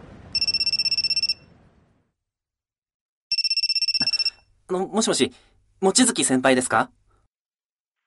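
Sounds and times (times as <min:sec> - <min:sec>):
electronic telephone ringing while someone places a call: 0:00.3 - 0:01.5, 0:03.3 - 0:04.5
speech: 0:04.7 - 0:07.0.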